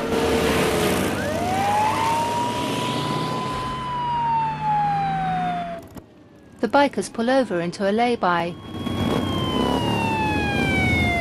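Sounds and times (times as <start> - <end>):
police car siren wailing during a chase: 0.6 - 6.0, 8.0 - 11.1
speech: 6.6 - 8.9.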